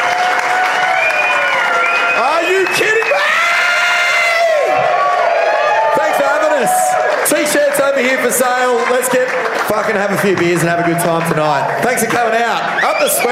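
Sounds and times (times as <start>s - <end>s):
whoops and cheering voices: 0.0s - 7.2s, 12.6s - 13.3s
crowd applauding: 0.0s - 13.3s
speech: 6.6s - 13.3s.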